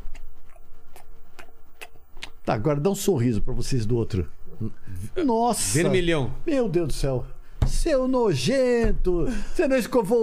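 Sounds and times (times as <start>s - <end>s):
chewing a plaque-disclosing dye tablet with crisp crunches: 0.0s - 2.4s
speech: 2.5s - 10.2s.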